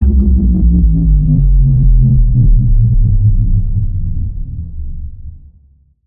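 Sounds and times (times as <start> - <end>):
spaceship landing: 0.0 - 4.6.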